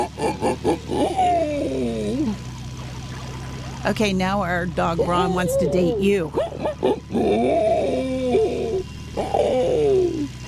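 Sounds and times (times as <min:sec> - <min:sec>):
person imitating pig squeals with the voice: 0:00.0 - 0:02.4, 0:04.9 - 0:10.3
speech: 0:03.9 - 0:07.4.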